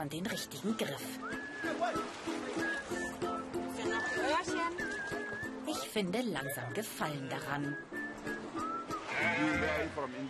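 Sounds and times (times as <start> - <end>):
speech: 0.0 - 3.2, 4.0 - 8.4, 9.2 - 10.2
sheep bleating: 9.0 - 10.2.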